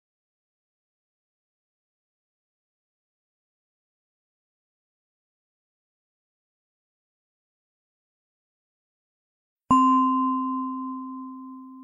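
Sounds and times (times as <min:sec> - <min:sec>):
meditation bell struck to end a guided meditation: 0:09.7 - 0:11.8.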